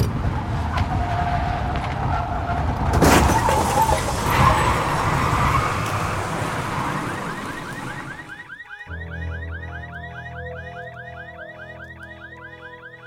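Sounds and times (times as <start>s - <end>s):
car crashing into another car: 0.0s - 8.4s
car speeding around a road curve, rushing engine and road noise: 0.0s - 13.0s
warbling electronic car alarm: 4.5s - 13.0s.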